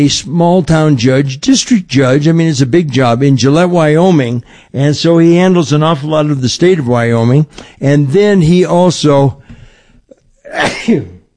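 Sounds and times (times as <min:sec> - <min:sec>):
speech: 0:00.0 - 0:09.4, 0:10.5 - 0:11.2
loud sneeze: 0:10.4 - 0:11.3.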